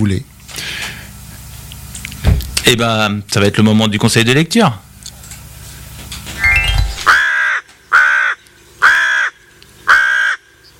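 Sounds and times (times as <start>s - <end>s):
speech: 0.0s - 0.3s, 2.6s - 4.9s
rising tone: 6.4s - 7.2s
crow cawing: 7.1s - 10.6s.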